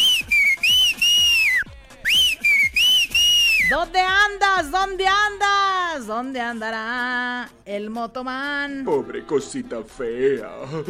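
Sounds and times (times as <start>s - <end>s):
loud shrill whistles: 0.0s - 3.8s
speech: 3.7s - 10.8s.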